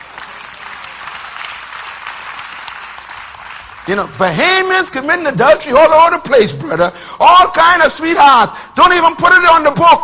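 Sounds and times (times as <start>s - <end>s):
audience applause: 0.0s - 4.4s
speech: 3.9s - 10.0s.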